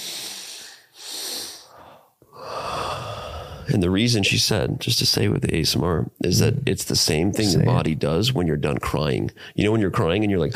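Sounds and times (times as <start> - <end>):
deliberate breathing in a breathing exercise: 0.0 - 3.7, 9.3 - 9.6
speech: 3.7 - 10.5.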